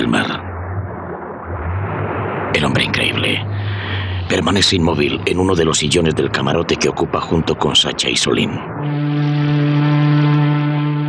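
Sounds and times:
ship's siren droning in a low horn tone inside a cabin: 0.0 - 4.3, 8.1 - 11.0
speech: 2.6 - 3.5, 4.3 - 9.4.

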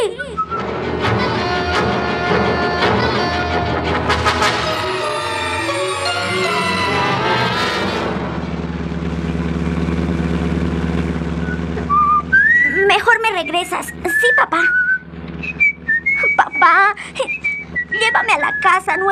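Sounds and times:
steady low engine rumble: 0.0 - 19.1
man whistling a short tune: 0.2 - 0.7, 11.4 - 19.1
speech: 18.7 - 19.1.

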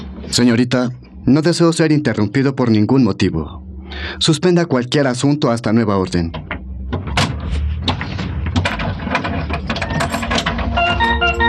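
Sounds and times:
speech: 0.3 - 6.6
door closing: 6.4 - 11.4.

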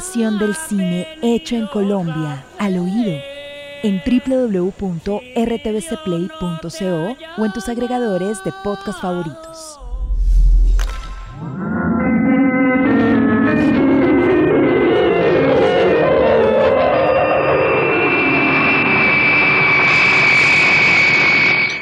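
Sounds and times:
speech: 0.1 - 9.8
jet engine of a jet flying away from an island at very high speed: 9.8 - 21.8.

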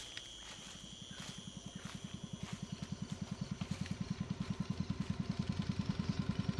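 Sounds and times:
faint high whine: 0.0 - 6.5
motorboat engine on a launch chugging: 1.5 - 6.5.

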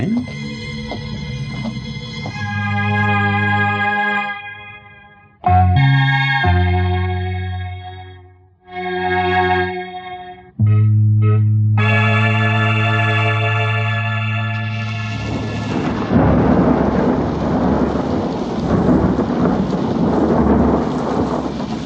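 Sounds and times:
sustained tonal hum: 0.0 - 16.8
heavy rain: 14.3 - 21.8
rolling thunder over empty streets of an Arab quarter: 14.6 - 21.8.

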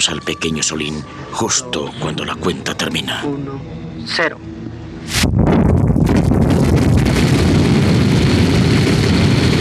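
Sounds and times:
speech: 0.0 - 5.6
heavy continuous roaring rumble: 2.6 - 9.5
explosion shaking and destroying an office: 5.1 - 9.5.

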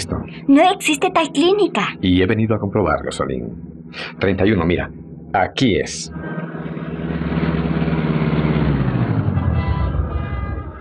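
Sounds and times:
speech: 0.5 - 6.6
car engine slowing and idling: 6.1 - 10.5.

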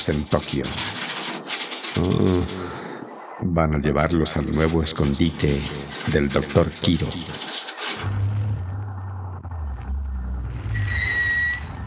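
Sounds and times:
speech: 0.0 - 1.0, 2.0 - 2.8, 3.4 - 7.6
car engines rumbling and droning: 0.0 - 3.4, 4.4 - 11.8.

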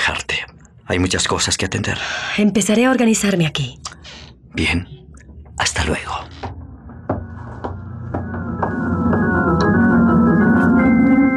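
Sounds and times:
speech: 0.9 - 5.0, 5.6 - 6.3
sustained musical drone: 4.5 - 11.3
footsteps of a man walking away: 6.2 - 9.3.

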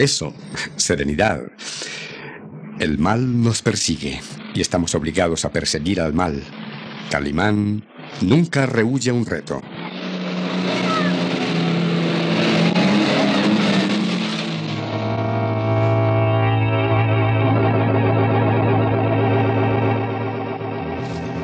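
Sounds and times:
speech: 0.0 - 2.0, 2.8 - 9.8
car engine revving during a chase: 5.7 - 21.4.

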